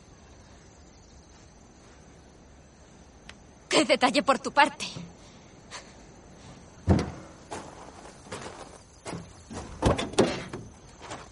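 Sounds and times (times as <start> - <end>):
speech: 3.8 - 5.1
car door thuds: 6.8 - 7.3.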